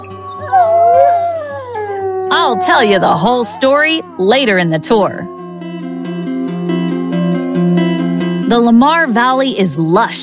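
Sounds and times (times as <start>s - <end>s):
wolf howling in the Lamar Valley of Yellowstone: 0.0s - 8.0s
speech: 2.5s - 5.4s, 8.5s - 10.2s.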